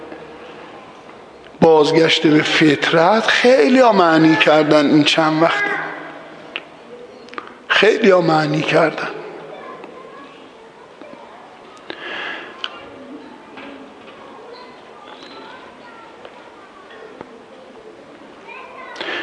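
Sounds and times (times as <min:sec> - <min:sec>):
children chattering and squealing in the background: 0:00.0 - 0:19.2
speech: 0:01.7 - 0:05.8, 0:07.8 - 0:09.2.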